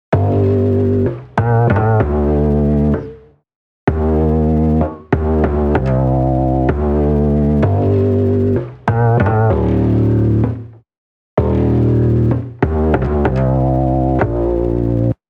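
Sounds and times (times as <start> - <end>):
lo-fi 808 bass: 0.1 - 3.3, 3.9 - 10.8, 11.4 - 15.2.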